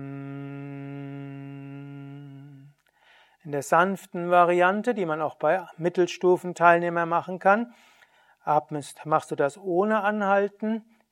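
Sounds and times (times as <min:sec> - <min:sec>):
person humming on exhale during bee yoga breathing exercise: 0:00.0 - 0:02.8
soft breath: 0:02.8 - 0:03.5, 0:07.7 - 0:08.4
speech: 0:03.4 - 0:10.9.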